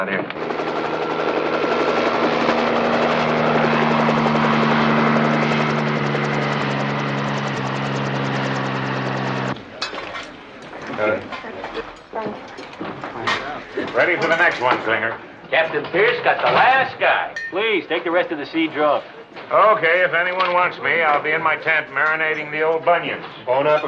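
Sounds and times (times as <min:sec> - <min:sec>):
speech: 0:00.0 - 0:00.6, 0:14.2 - 0:23.8
helicopter arriving with wounded, rotor drone: 0:00.0 - 0:15.6
indistinct voices: 0:09.5 - 0:23.8
movement sounds: 0:09.5 - 0:23.8.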